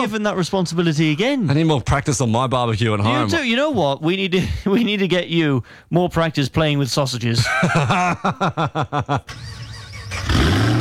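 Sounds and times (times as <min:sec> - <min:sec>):
speech: 0:00.0 - 0:09.6
laughter: 0:07.4 - 0:10.3
car engine starting and revving: 0:09.3 - 0:10.8.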